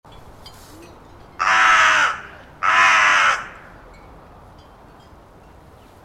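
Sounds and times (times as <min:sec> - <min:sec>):
carrion crow Corvus corone giving harsh hoarse caws: 0:01.4 - 0:03.8.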